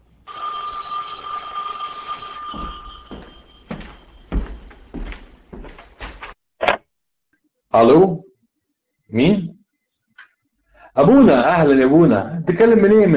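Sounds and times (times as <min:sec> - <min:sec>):
old-fashioned telephone bell ringing: 0:00.2 - 0:04.4
speech: 0:07.8 - 0:08.2, 0:09.1 - 0:09.5, 0:11.0 - 0:13.1.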